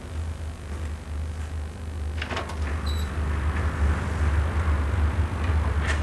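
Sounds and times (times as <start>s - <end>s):
steady low rumbling hum: 0.0s - 6.0s
faint motel room door squeak: 2.3s - 3.2s.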